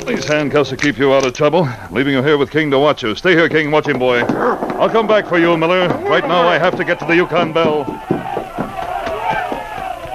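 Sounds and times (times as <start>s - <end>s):
speech: 0.0s - 8.1s
noisy crowd shouting and clamoring at a river dock: 4.2s - 10.1s.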